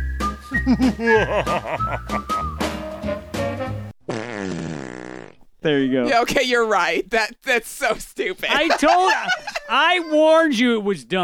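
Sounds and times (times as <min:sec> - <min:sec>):
goofy intro music jingle with buzzy whistle-like tones over beats: 0:00.0 - 0:03.9
laughter: 0:00.6 - 0:02.3, 0:08.5 - 0:10.1
speech: 0:00.6 - 0:03.2, 0:05.6 - 0:11.2.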